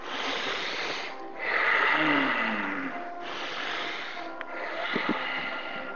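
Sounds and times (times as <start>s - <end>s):
slow deep breathing in and out: 0.0s - 5.9s.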